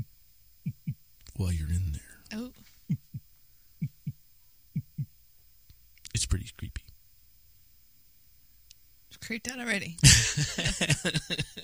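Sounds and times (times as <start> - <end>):
faint steady hum: 0.0 - 11.6
heartbeat thumps echoing in a flooded room in a video game: 0.6 - 1.0, 2.9 - 3.2, 3.8 - 4.2, 4.8 - 5.1
speech: 1.4 - 2.6, 9.3 - 11.6
laughter: 10.0 - 11.6.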